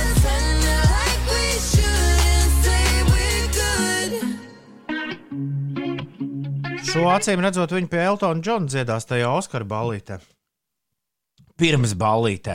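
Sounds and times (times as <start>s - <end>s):
upbeat pop song: 0.0s - 7.2s
speech: 6.9s - 10.4s, 11.6s - 12.5s.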